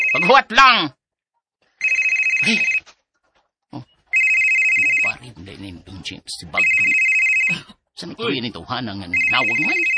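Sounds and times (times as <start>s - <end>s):
cellphone ringtone ringing: 0.0s - 0.5s, 1.8s - 2.8s, 4.1s - 5.2s, 6.6s - 7.6s, 9.1s - 9.9s
speech: 0.2s - 1.0s, 2.4s - 2.8s, 5.4s - 9.9s.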